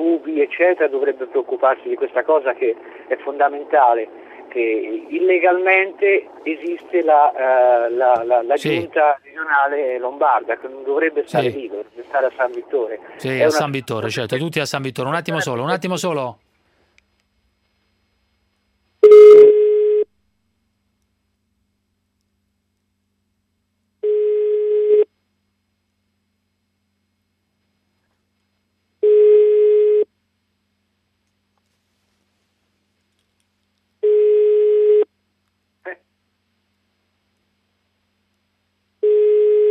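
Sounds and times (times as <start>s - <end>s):
speech: 0.2s - 16.4s
telephone ringing tone: 19.0s - 20.1s, 24.0s - 25.1s, 29.0s - 30.1s, 34.0s - 35.1s, 39.0s - 39.6s.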